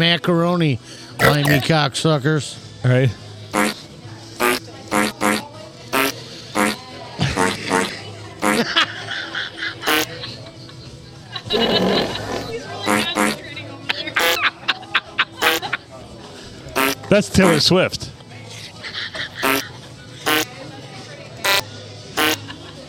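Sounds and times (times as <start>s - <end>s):
speech: 0.0s - 3.7s, 17.4s - 18.1s
fart sounds played on a novelty keyboard: 1.2s - 1.6s, 3.5s - 3.8s, 4.4s - 8.6s, 9.9s - 10.1s, 11.5s - 13.4s, 16.8s - 17.0s, 19.4s - 19.6s, 20.3s - 20.5s, 21.4s - 21.6s, 22.2s - 22.4s
laughter: 6.0s - 16.2s, 18.4s - 20.5s, 22.2s - 22.8s.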